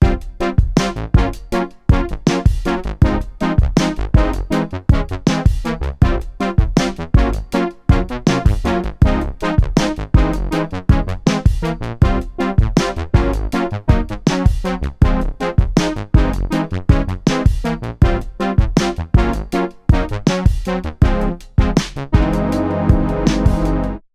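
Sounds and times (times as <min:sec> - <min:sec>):
brass instruments: 0:00.0 - 0:24.0.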